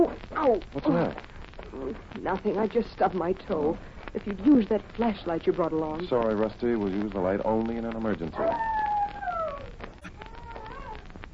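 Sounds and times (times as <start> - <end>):
speech: 0.0 - 8.8
soft hiss: 0.0 - 11.3
dog howling near a lone pine: 8.3 - 11.1.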